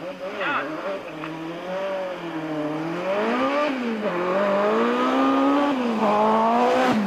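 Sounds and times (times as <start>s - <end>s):
turbocharged inline-four rally car engine revving: 0.0s - 7.0s.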